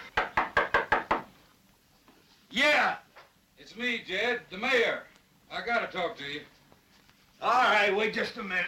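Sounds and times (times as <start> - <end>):
knocking on a wooden door: 0.2 - 1.3
speech: 3.7 - 6.6, 7.4 - 8.6.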